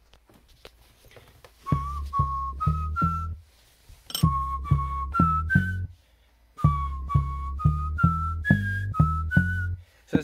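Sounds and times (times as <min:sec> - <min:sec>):
whistled tune played through a speaker: 0:01.6 - 0:03.4, 0:04.2 - 0:06.0, 0:06.6 - 0:09.9.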